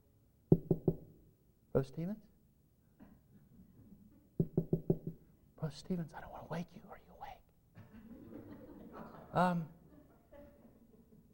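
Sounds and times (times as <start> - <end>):
soft knocking on a house door: 0.5 - 1.1, 4.4 - 5.2
speech: 1.8 - 2.3, 5.6 - 7.1, 9.3 - 9.8
laughter: 7.8 - 11.3.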